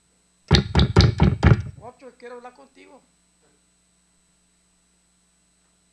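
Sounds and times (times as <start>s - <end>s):
firm knocking on a door: 0.5s - 1.8s
speech: 2.0s - 3.6s.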